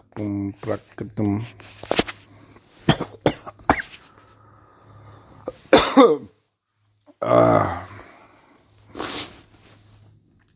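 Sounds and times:
faint humming background: 0.0s - 10.5s
speech: 0.2s - 2.0s
harsh cough: 2.8s - 4.0s, 5.5s - 6.4s.

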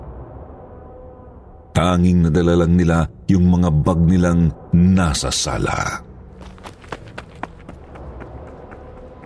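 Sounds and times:
rumbling background: 0.0s - 9.2s
speech: 1.8s - 6.1s
running footsteps: 6.3s - 9.2s.

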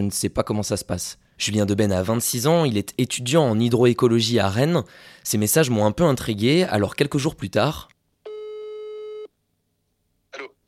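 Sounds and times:
speech: 0.0s - 7.9s
telephone line tone as a call is placed: 8.3s - 9.3s.

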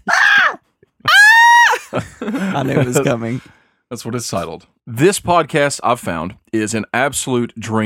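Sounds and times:
person screaming: 0.0s - 1.9s
laughter: 1.7s - 3.5s
speech: 2.0s - 7.8s.

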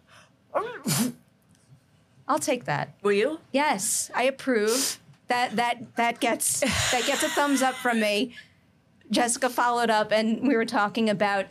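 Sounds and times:
person imitating a sneeze with their voice: 0.5s - 1.2s
speech: 2.3s - 8.5s, 9.1s - 11.4s.

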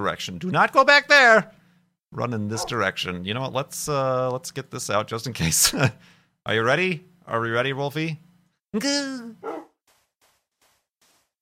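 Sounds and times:
speech: 0.0s - 9.5s
dog barking: 2.6s - 2.8s, 9.4s - 9.7s.

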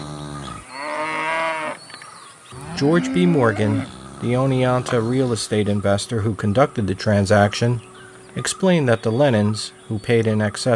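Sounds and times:
cow mooing: 0.0s - 1.8s, 2.5s - 5.0s
speech: 2.8s - 10.7s.

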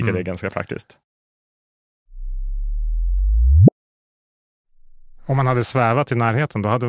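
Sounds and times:
speech: 0.0s - 1.1s, 5.3s - 6.8s
gravitational wave data played back as a rising tone and chirp: 2.2s - 3.8s.

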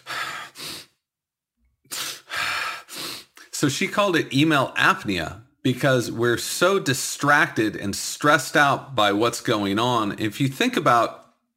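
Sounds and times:
person gasping sharply after holding breath: 0.0s - 1.0s, 1.9s - 3.5s
person's breathy puffs: 0.0s - 1.0s, 1.9s - 3.6s
speech: 3.6s - 11.2s.

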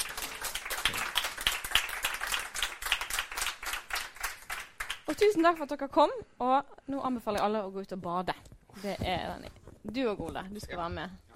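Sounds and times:
audience applause: 0.0s - 5.5s
speech: 5.1s - 11.3s.

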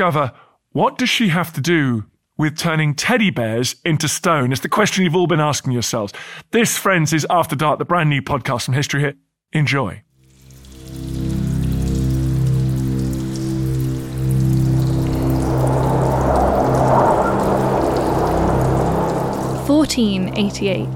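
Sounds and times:
speech: 0.0s - 10.1s, 19.9s - 20.9s
rain storm pouring on a dark night in North Yorkshire: 10.3s - 20.9s
howling wind: 12.5s - 20.9s.

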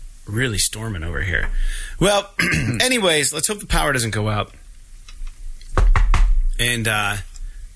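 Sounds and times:
faint noise: 0.0s - 7.7s
speech: 0.2s - 4.6s, 6.6s - 7.3s
sharp knocks on wood: 5.8s - 6.5s.

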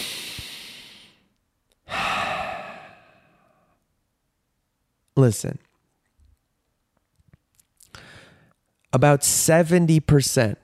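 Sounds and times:
person taking a big deep breath: 0.0s - 1.3s, 1.9s - 3.8s, 7.9s - 8.5s
speech: 5.2s - 5.7s, 8.9s - 10.6s.

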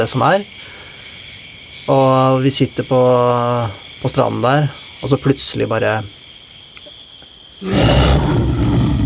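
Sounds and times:
speech: 0.0s - 0.8s, 1.8s - 6.2s, 7.6s - 8.0s
faint high chorus of birds: 0.0s - 9.0s
frogs calling: 0.0s - 9.0s
jaguar roaring at a beach at nightfall: 7.6s - 9.0s.

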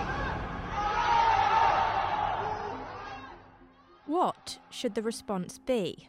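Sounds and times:
residents chanting encouragement together from apartment windows: 0.0s - 4.8s
speech: 4.1s - 6.0s.

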